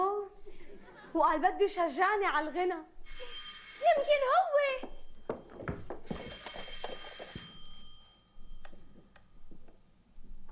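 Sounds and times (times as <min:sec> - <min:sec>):
speech: 0:01.2 - 0:04.9
telephone bell ringing: 0:03.0 - 0:05.4, 0:06.1 - 0:09.2.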